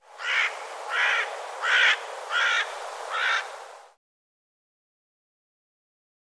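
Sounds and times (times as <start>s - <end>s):
bird giving harsh raspy calls: 0.1s - 3.9s.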